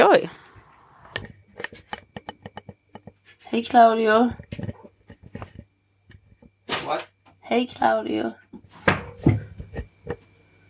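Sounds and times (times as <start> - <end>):
speech: 0.1 - 0.4, 3.6 - 4.4, 6.9 - 8.4
dishes knocking and clattering as they are handled and set down: 1.2 - 3.2, 4.4 - 6.5, 8.8 - 10.3.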